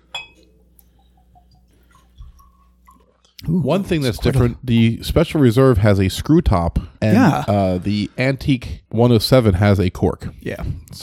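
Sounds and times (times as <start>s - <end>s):
glass clinking: 0.1s - 0.5s
speech: 3.5s - 11.0s.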